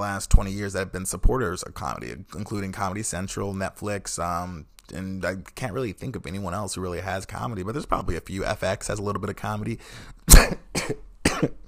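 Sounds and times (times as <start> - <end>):
speech: 0.0 - 11.6
person coughing into the microphone: 10.3 - 11.6.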